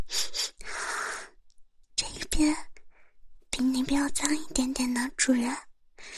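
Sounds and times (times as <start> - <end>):
person imitating a dog sniffing: 0.1 - 1.4
speech: 2.4 - 2.7, 3.8 - 5.7.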